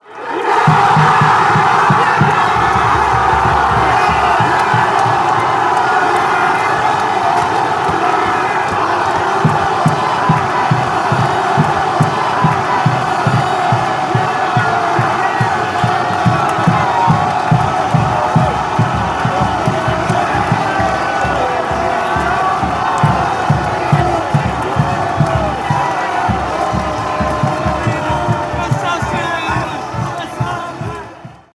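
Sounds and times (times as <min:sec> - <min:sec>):
fans chanting after a Denmark score: 0:00.0 - 0:31.5.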